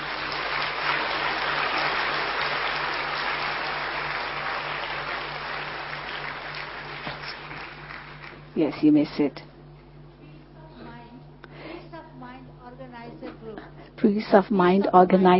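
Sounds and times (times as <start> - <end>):
audience applause: 0.0 - 8.6
speech: 8.6 - 9.5, 14.1 - 15.3.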